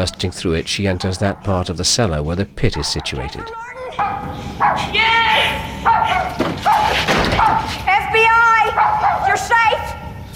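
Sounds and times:
dogs yelping and barking in a cellar: 0.0 - 1.7, 2.7 - 10.1
speech: 0.0 - 10.0
person crying out: 3.4 - 4.0.

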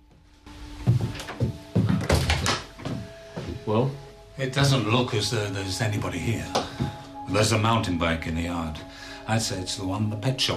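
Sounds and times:
door opening: 1.0 - 3.0
speech: 3.7 - 10.5.

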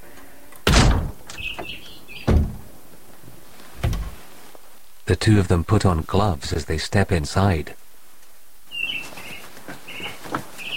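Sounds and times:
splintered back door pushed open with a foot: 0.6 - 2.8, 3.8 - 4.2
speech: 5.1 - 7.8.

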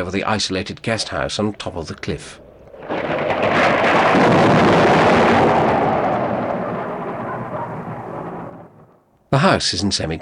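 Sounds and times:
speech: 0.0 - 2.4, 9.4 - 10.2
waves crashing onto rocks and into rock pools below a cliff: 1.6 - 8.6.

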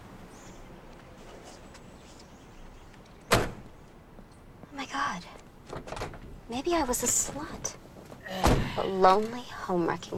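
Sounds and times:
truck door being opened: 3.3 - 3.8, 5.7 - 6.4
speech: 6.5 - 7.8, 8.4 - 10.1.

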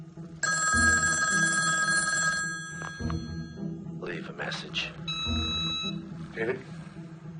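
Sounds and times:
telephone ringing on the line during a call from a motel room phone: 0.4 - 3.6, 5.1 - 6.0
speech: 4.4 - 6.8.

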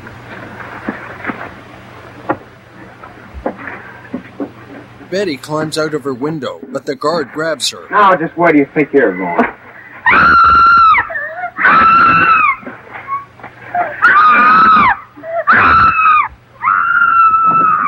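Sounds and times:
speech: 5.1 - 9.6
woman screaming: 10.1 - 17.8.

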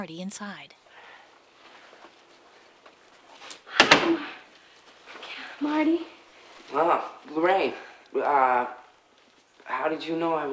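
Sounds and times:
speech: 0.0 - 0.8, 5.6 - 8.8, 9.7 - 10.5
door opening: 3.3 - 4.5.

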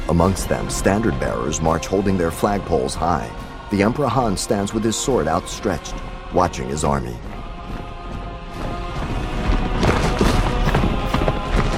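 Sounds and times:
speech: 0.1 - 7.3
terracotta shell shattering with crashing and crumbling rumble: 7.6 - 11.7.

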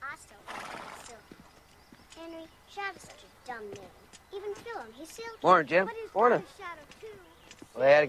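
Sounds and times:
horse hooves clip-clopping and shuffling: 0.1 - 8.0
horses whinnying while being saddled: 0.5 - 1.1
speech: 2.2 - 8.0.

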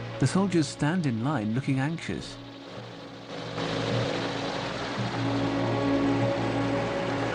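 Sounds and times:
speech: 0.2 - 2.4
military police vehicle engine droning as it backs up and turns: 2.4 - 7.3.

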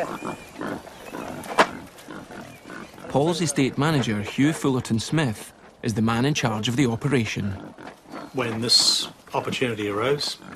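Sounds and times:
wild boar squealing: 0.0 - 4.6, 7.2 - 10.5
wild boar grunting in Scotland: 0.0 - 5.7, 6.3 - 10.5
people talking quietly: 3.0 - 10.5
speech: 3.1 - 7.7, 8.4 - 10.4.

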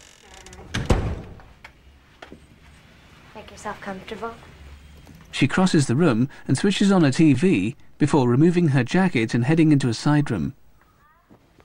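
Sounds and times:
quiet noise: 0.0 - 11.6
apartment door closing thud: 0.3 - 1.6
speech: 3.4 - 4.5, 5.4 - 10.6.

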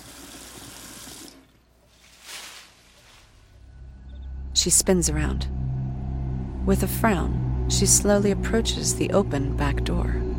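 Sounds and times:
water running into a kitchen sink: 0.0 - 1.6
speech: 4.6 - 5.6, 6.7 - 10.3.

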